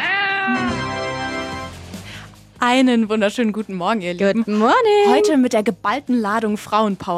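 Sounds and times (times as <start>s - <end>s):
cat meowing with a drawn-out tonal wail: 0.0s - 0.9s
speech: 2.6s - 7.1s.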